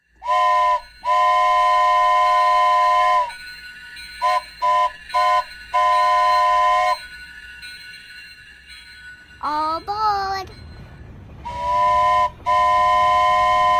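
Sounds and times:
train whistle as a train arrives: 0.2s - 3.5s, 4.2s - 7.1s, 11.4s - 13.7s.

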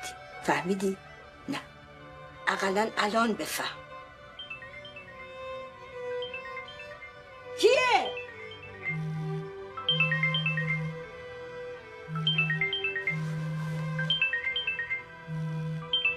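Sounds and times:
speech: 0.5s - 1.7s, 2.5s - 3.8s
mobile phone ringtone melody: 4.4s - 7.1s, 8.0s - 11.3s, 12.0s - 16.1s.

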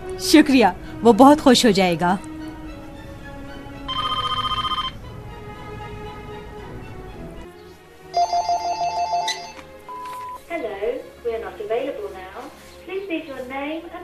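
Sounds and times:
speech: 0.2s - 2.3s
home telephone ringing in trilling bursts: 3.9s - 5.0s, 8.1s - 10.4s.

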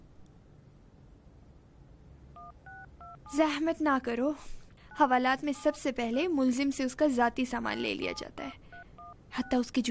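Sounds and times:
speech: 3.2s - 8.6s, 9.4s - 9.9s
touch-tone beeps from a phone keypad: 4.9s - 5.9s, 7.7s - 9.7s.

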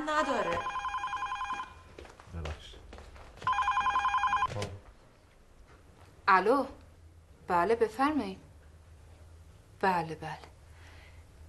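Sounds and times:
speech: 0.1s - 0.8s, 6.3s - 6.8s, 7.5s - 8.4s, 9.8s - 10.5s
telephone bell ringing: 0.2s - 1.9s, 3.5s - 4.5s.

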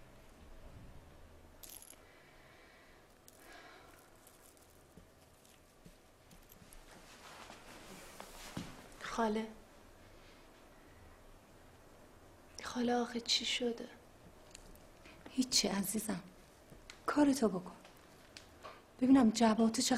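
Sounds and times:
coins dropped for a bride clinking on a hard surface: 1.6s - 2.0s, 3.1s - 5.6s
speech: 9.2s - 9.6s, 12.8s - 14.0s, 15.4s - 16.3s, 17.2s - 17.8s, 19.0s - 19.9s.

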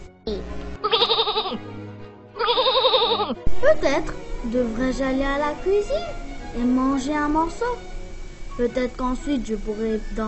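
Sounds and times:
sheep bleating: 0.8s - 1.6s, 2.4s - 3.4s
low sounds: 3.3s - 10.2s
speech: 3.7s - 7.9s, 8.6s - 10.2s.

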